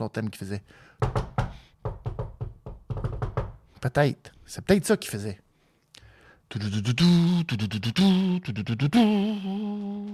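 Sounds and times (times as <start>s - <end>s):
speech: 0.0s - 1.3s, 3.8s - 5.4s, 6.5s - 10.1s
firm knocks on a locker-room door: 1.0s - 3.6s.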